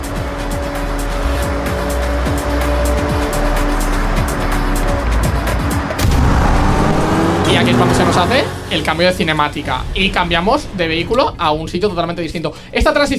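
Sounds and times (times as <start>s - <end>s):
tires squealing and skidding: 0.0s - 9.2s
racing video game car engine revving, recorded from real cars: 0.0s - 10.9s
speech: 7.6s - 13.1s.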